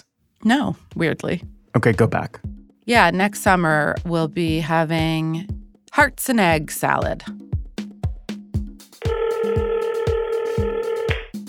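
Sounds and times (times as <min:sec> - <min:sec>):
speech: 0:00.4 - 0:07.4
regular thumping beat: 0:00.5 - 0:11.4
telephone ringing with a steady electronic tone: 0:09.0 - 0:11.2.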